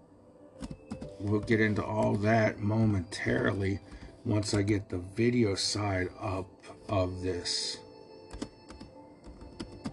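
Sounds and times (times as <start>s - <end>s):
computer keyboard typing: 0.6s - 2.5s, 8.3s - 9.9s
speech: 1.2s - 7.8s.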